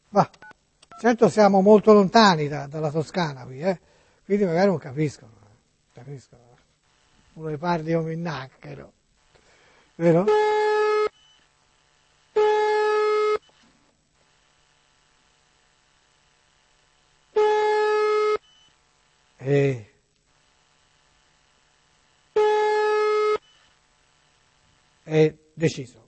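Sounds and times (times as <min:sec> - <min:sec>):
speech: 0:00.1 - 0:00.4, 0:01.0 - 0:05.4, 0:06.0 - 0:06.5, 0:07.4 - 0:09.0, 0:10.0 - 0:10.6, 0:25.6 - 0:26.0
unanswered telephone ringing tone: 0:09.7 - 0:19.7, 0:20.3 - 0:25.1.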